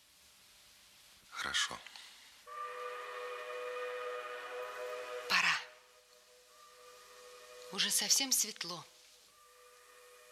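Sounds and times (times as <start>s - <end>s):
speech: 1.4s - 2.0s, 7.7s - 9.0s
train whistle blast before departure: 2.5s - 8.5s, 9.3s - 10.3s.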